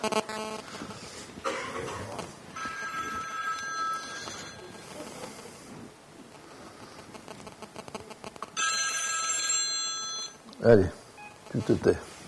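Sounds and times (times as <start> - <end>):
speech: 0.0 - 0.8, 10.6 - 12.1
mobile phone bright electronic ringtone: 2.6 - 5.0, 8.6 - 10.4.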